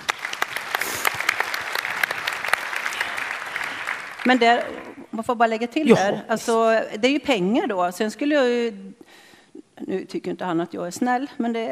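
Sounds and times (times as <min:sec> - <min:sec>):
audience applause: 0:00.0 - 0:05.0
speech: 0:04.2 - 0:09.2, 0:09.9 - 0:11.7.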